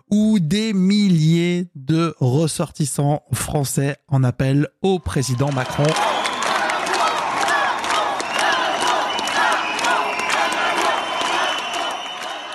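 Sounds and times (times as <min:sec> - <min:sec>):
speech: 0:00.1 - 0:01.2, 0:01.9 - 0:06.2
scattered claps from crowd: 0:05.4 - 0:12.5
large crowd of stranded travellers chanting inside the airport in Marrakech: 0:05.9 - 0:12.5
people shouting: 0:05.9 - 0:12.5.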